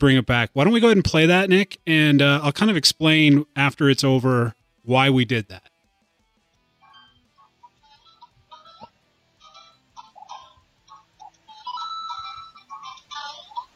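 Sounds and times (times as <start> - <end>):
speech: 0.0 - 5.7
cell phone ringing with a bright electronic ringtone: 6.8 - 13.7.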